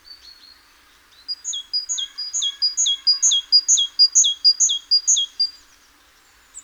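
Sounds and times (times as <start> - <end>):
Great tit Parus major singing: 1.4 - 5.6.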